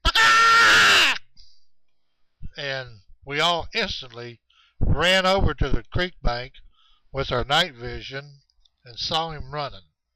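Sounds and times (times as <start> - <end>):
voice imitating a creature's loud peacock-like scream at night near a creek bank: 0.0 - 1.3
speech: 2.7 - 9.9.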